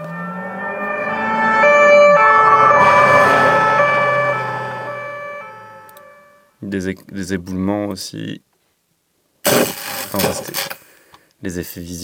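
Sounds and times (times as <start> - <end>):
siren wailing: 0.0 - 6.3
speech: 6.7 - 8.5, 10.1 - 10.8, 11.4 - 12.0.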